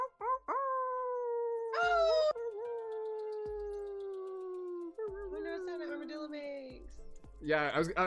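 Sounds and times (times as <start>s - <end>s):
people imitating a wolf howl: 0.0s - 6.0s
speech: 7.4s - 8.0s.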